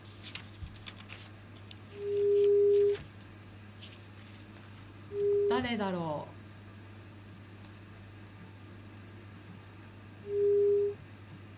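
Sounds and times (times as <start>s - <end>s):
telephone dialing electronic beeps: 2.0s - 3.0s, 10.3s - 11.0s
speech: 5.7s - 6.3s.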